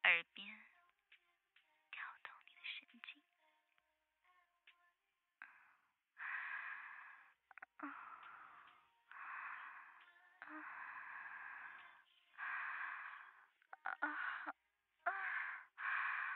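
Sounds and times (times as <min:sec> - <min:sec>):
speech: 0:00.2 - 0:00.8
woman breathing close to the ear: 0:05.4 - 0:16.3.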